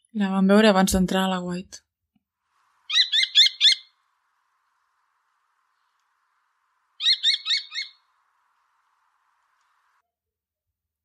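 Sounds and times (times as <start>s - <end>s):
speech: 0.2s - 1.8s
common kestrel calling: 2.8s - 4.0s, 6.9s - 8.4s.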